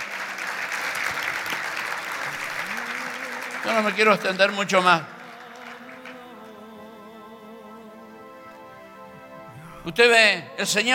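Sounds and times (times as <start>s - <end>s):
large crowd applauding: 0.0s - 6.3s
speech: 3.6s - 5.1s, 9.8s - 10.9s.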